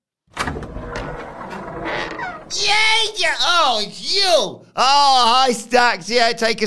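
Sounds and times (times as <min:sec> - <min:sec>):
door rattling as someone runs into it: 0:00.3 - 0:02.9
continuous scraping rumbling noise: 0:00.4 - 0:03.2
speech: 0:02.5 - 0:06.6.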